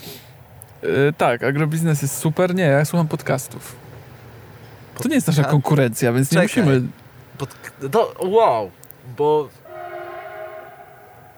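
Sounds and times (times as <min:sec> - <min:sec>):
rumble and rolling rail noise of a passing train: 0:00.2 - 0:08.0, 0:09.4 - 0:11.3
speech: 0:00.8 - 0:03.8, 0:05.0 - 0:09.6
train horn chord-like blast: 0:09.6 - 0:11.3.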